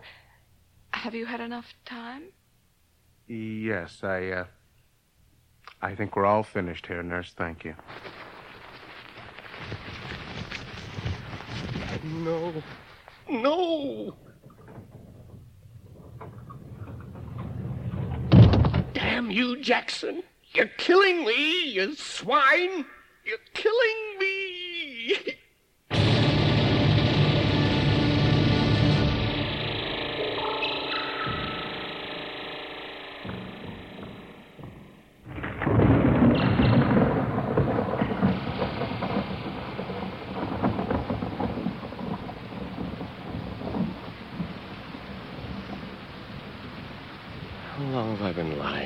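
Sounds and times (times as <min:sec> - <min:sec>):
speech: 0:01.0 - 0:02.4, 0:03.3 - 0:04.6, 0:05.8 - 0:08.2, 0:12.1 - 0:14.2, 0:19.2 - 0:24.0, 0:25.0 - 0:25.4
rain falling: 0:07.6 - 0:19.8, 0:23.6 - 0:48.8
sustained humming tone: 0:25.9 - 0:35.7.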